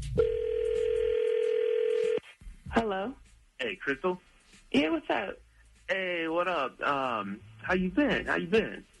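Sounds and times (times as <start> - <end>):
steady continuous telephone line tone: 0.2 - 2.2
speech: 3.8 - 8.9.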